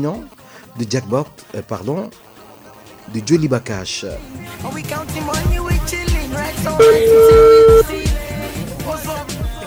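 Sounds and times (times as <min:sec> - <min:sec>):
speech: 0:00.0 - 0:02.3, 0:03.1 - 0:08.0
busy music with a thumping beat: 0:04.2 - 0:09.6
phone ringback tone during an outgoing call: 0:06.7 - 0:07.9.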